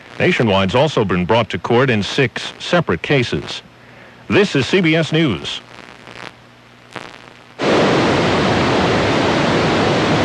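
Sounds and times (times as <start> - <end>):
speech: 0.2 - 3.7, 4.3 - 5.7
roaring waterfall: 7.6 - 10.2.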